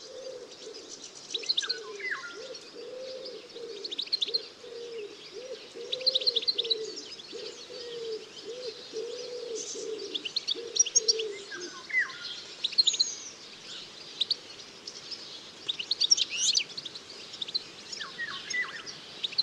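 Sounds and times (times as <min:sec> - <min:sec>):
common wood pigeon cooing: 0:00.0 - 0:12.4
other birds chirping and trilling: 0:00.0 - 0:19.4.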